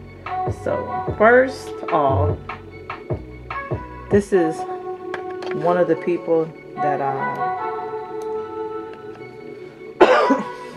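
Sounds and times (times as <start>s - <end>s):
speech: 0.4s - 2.6s, 4.1s - 4.7s, 5.5s - 7.6s
single sharp cough: 10.0s - 10.6s.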